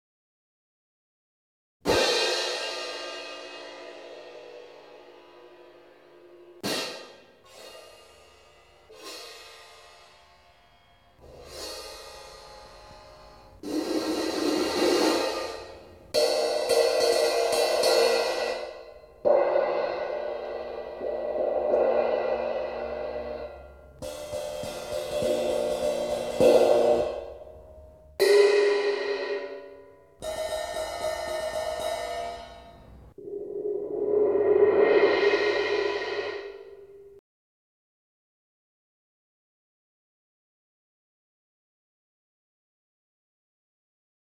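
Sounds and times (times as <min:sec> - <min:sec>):
metal cymbals: 0:01.9 - 0:37.2.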